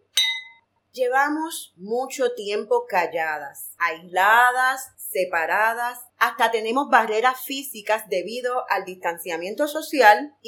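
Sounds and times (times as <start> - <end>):
wine glasses clinking in a toast: 0.2 - 0.6
speech: 1.0 - 10.4.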